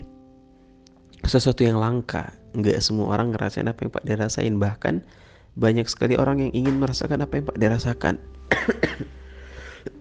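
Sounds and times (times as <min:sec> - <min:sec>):
speech: 0:01.3 - 0:09.1
dry hacking cough: 0:08.5 - 0:09.2.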